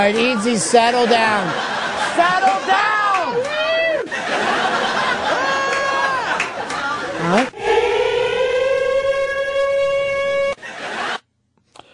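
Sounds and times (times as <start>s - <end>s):
speech: 0.0s - 3.5s, 7.3s - 7.6s
laughter: 0.0s - 8.8s, 10.3s - 11.2s
civil defense siren wailing: 7.6s - 10.6s.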